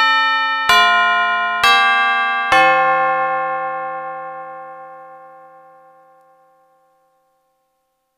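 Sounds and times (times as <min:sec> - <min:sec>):
huge front doorbell chiming: 0:00.0 - 0:08.0.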